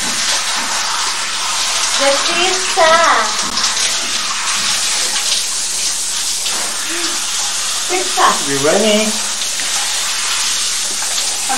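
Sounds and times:
soapy dirty bath water sloshing in a tub: 0:00.0 - 0:11.5
speech: 0:02.0 - 0:03.7, 0:07.9 - 0:09.2.

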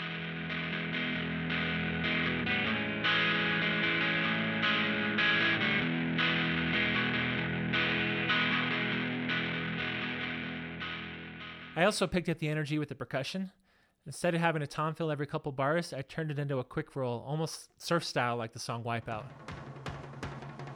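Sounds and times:
distorted electric guitar playing sustained chords: 0:00.0 - 0:11.8
speech: 0:11.8 - 0:19.6.

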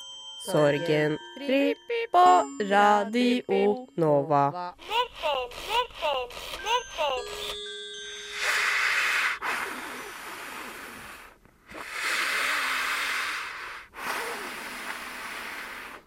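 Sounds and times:
short chiming jingle: 0:00.0 - 0:03.2, 0:06.6 - 0:09.0
speech: 0:00.4 - 0:07.5
loud rasping breaths through a bra: 0:08.4 - 0:16.0.

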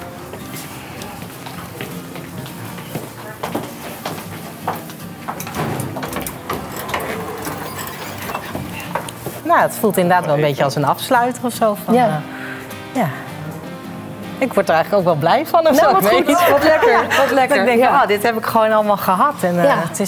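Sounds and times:
heavy doors opened by pulling a chain: 0:05.5 - 0:09.4
speech: 0:09.5 - 0:12.4, 0:13.0 - 0:13.2, 0:14.4 - 0:20.0
laughter: 0:16.2 - 0:17.5.

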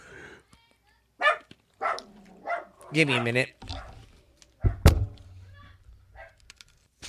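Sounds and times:
several dogs barking: 0:01.2 - 0:04.8
speech: 0:02.9 - 0:03.8.

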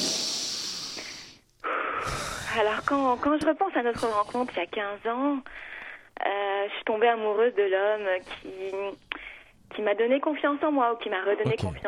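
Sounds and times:
long deep breath in and strong airy exhale: 0:00.0 - 0:03.2, 0:05.4 - 0:06.1, 0:09.1 - 0:09.6
speech: 0:02.6 - 0:09.0, 0:09.7 - 0:11.8.

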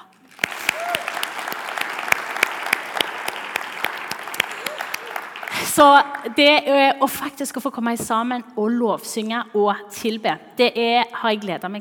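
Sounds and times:
audience clapping: 0:00.0 - 0:06.4
speech: 0:05.8 - 0:11.7.

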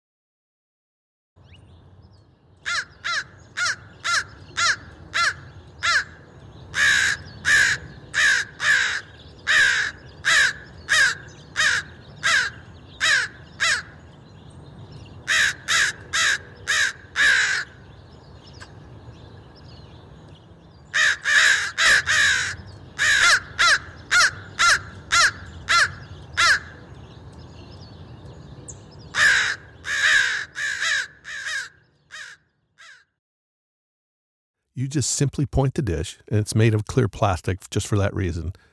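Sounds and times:
crows cawing: 0:02.6 - 0:14.0, 0:15.2 - 0:17.8, 0:20.9 - 0:26.8, 0:29.1 - 0:33.2
speech: 0:34.8 - 0:38.7.

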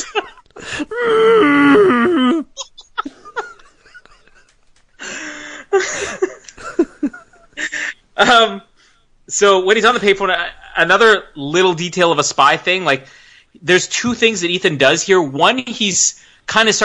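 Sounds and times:
breathy laughter: 0:00.0 - 0:08.0
voice imitating moaning muzzled elephants as sex noises: 0:00.7 - 0:02.6
speech: 0:08.2 - 0:08.7, 0:09.3 - 0:16.8.

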